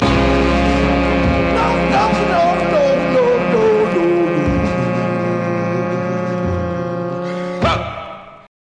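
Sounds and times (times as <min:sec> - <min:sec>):
downshift sampled music stabs: 0:00.0 - 0:08.5.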